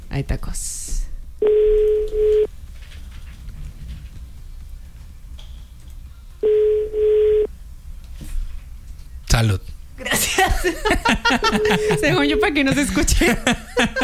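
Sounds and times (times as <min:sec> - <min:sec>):
speech: 0:00.2 - 0:02.5, 0:11.5 - 0:14.0
telephone ringback tone of a call being placed: 0:01.4 - 0:02.5, 0:06.4 - 0:07.5, 0:11.4 - 0:12.6
laughter: 0:10.0 - 0:14.0.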